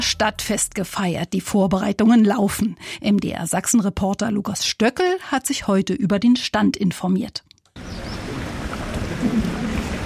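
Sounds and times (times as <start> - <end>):
speech: 0.0 - 8.0
fountain water splashing on a town market square: 7.8 - 10.0.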